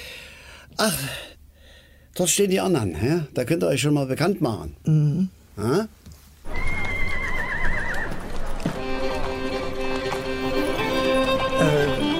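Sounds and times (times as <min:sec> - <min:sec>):
speech: 0:00.8 - 0:01.3, 0:02.2 - 0:06.0
horse hooves clip-clopping on a paddock: 0:06.4 - 0:12.1
horses on a paddock neighing and whinnying: 0:06.5 - 0:12.1.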